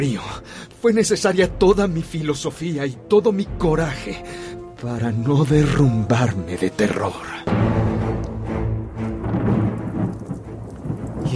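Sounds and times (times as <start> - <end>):
speech: 0.0 - 7.5
deep rumbling thunder: 8.8 - 11.3
huge hailstones pelting down violently in a thunderstorm: 9.2 - 11.3.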